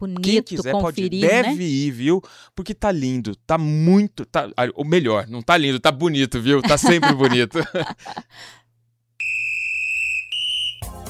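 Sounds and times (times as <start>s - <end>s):
speech: 0.0s - 8.6s
laughter: 6.6s - 8.4s
whistle blowing: 9.2s - 11.0s.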